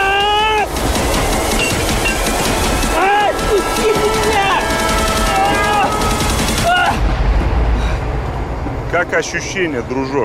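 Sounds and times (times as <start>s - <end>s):
approaching train with loud steady rumbling roar: 0.0s - 10.2s
train horn: 3.2s - 6.4s
speech: 9.0s - 10.2s.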